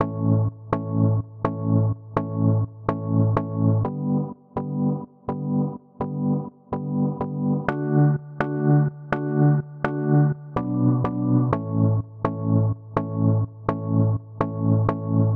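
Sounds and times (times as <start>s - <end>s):
organ pulse at 125 bpm: 0.1s - 15.3s.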